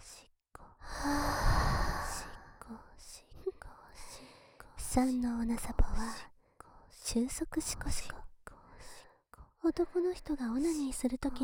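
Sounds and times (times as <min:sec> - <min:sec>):
quiet breaths: 0:00.0 - 0:11.0
long warm breathy exhale into microphone: 0:00.8 - 0:02.6
speech: 0:05.0 - 0:06.3, 0:07.1 - 0:08.2, 0:09.7 - 0:11.4.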